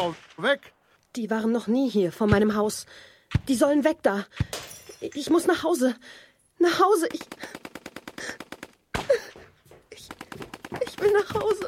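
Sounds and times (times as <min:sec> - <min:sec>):
gunfire in rapid bursts: 0:00.0 - 0:00.7, 0:07.0 - 0:09.3, 0:10.0 - 0:11.6
speech: 0:00.0 - 0:08.4, 0:10.0 - 0:11.6.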